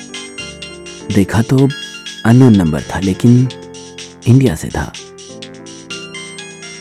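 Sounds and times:
mobile phone ringtone with a bright electronic melody: 0.0s - 4.3s, 5.0s - 6.7s
speech: 1.1s - 3.6s, 4.2s - 5.0s.

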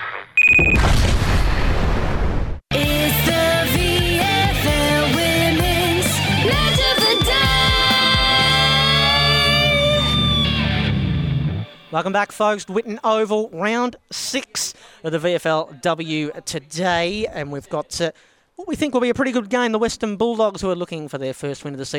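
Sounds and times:
explosion sound effect of an ad self-destructing: 0.5s - 2.6s
music: 2.7s - 12.0s
speech: 11.9s - 21.9s.

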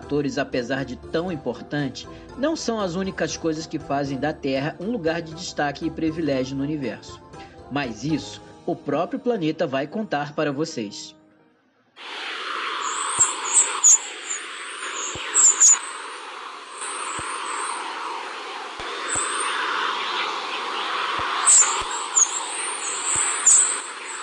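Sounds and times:
speech: 0.1s - 11.2s, 12.0s - 12.3s
electron radio emissions as quick rising chirps: 12.0s - 24.2s
steady rushing hiss: 12.0s - 24.2s.

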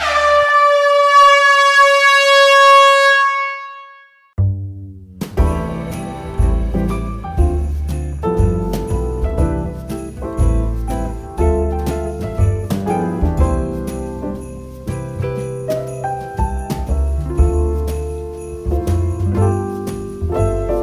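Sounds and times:
single loud sustained horn blast: 0.0s - 4.3s
upbeat music with bass and percussion: 4.4s - 20.8s.

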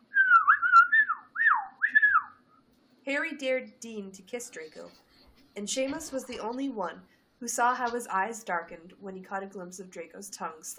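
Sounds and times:
wolf whistle by boys during a game of truth or dare: 0.1s - 2.4s
speech: 3.1s - 10.7s.

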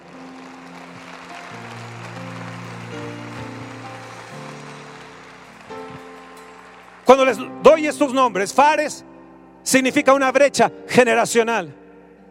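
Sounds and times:
church audience clapping: 0.0s - 8.1s
keyboard or organ chords: 0.0s - 12.2s
speech: 7.1s - 11.8s.

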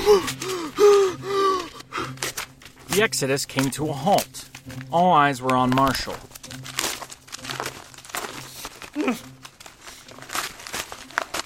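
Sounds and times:
speech: 0.1s - 0.4s, 3.0s - 6.3s, 9.1s - 9.3s
paper being torn and crinkled: 1.6s - 4.9s, 5.6s - 11.4s.

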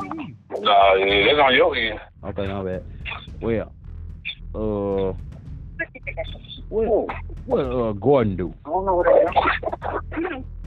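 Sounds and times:
voice over a phone line cutting in and out: 0.0s - 3.6s, 8.0s - 10.3s
speech: 0.6s - 3.8s, 4.5s - 5.3s, 6.0s - 10.5s.

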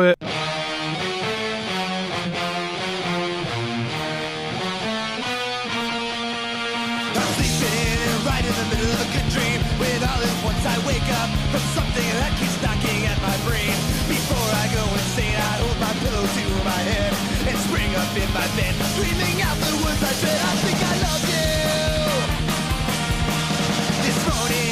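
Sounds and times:
speech: 0.0s - 1.0s
musical intro song with layered tones and band arrangement: 0.0s - 24.6s.

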